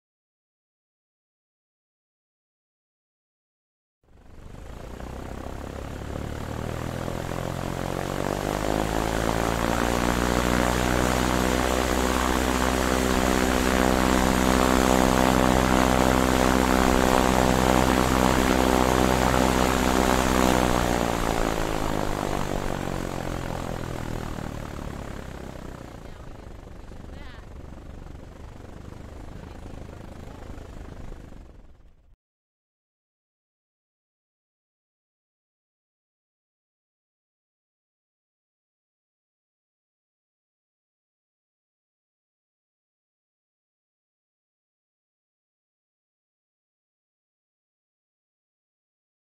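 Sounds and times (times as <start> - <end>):
Cessna propeller plane engine: 4.1 - 32.2.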